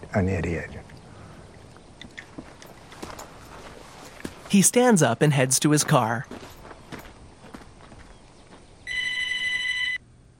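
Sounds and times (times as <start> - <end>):
speech: 0.1 - 0.9, 4.5 - 6.5
telephone ringing inside a store: 8.9 - 10.0.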